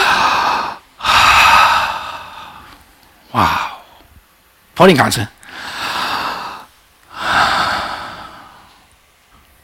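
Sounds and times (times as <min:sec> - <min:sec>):
crowd of people breathing in and out together: 0:00.0 - 0:02.8, 0:05.4 - 0:08.9
speech: 0:03.4 - 0:03.6, 0:04.8 - 0:05.4.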